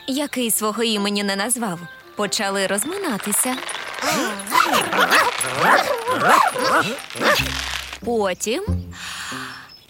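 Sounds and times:
speech: 0.1 - 9.4
small dog barking and yipping: 4.6 - 7.5.

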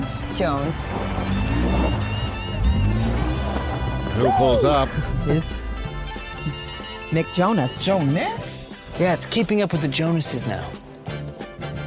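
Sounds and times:
speech: 0.0 - 2.0, 4.2 - 5.6, 6.4 - 10.8
heavy racing truck engines roaring: 0.0 - 7.1.

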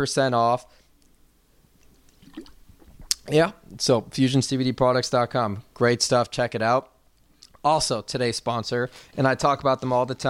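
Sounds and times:
speech: 0.0 - 0.8, 3.3 - 6.9, 7.6 - 10.2
person sipping CBD sports water: 1.8 - 3.3
short slurp of CBD sports water: 1.8 - 3.3.

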